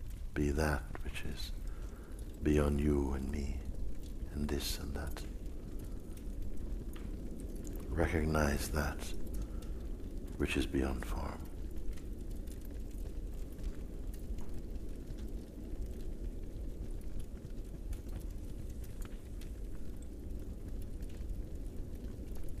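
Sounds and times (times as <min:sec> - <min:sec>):
firepit in a cave crackling and popping: 0:00.0 - 0:22.5
speech: 0:00.4 - 0:01.6, 0:02.4 - 0:03.6, 0:04.4 - 0:05.4, 0:07.9 - 0:09.2, 0:10.4 - 0:11.4.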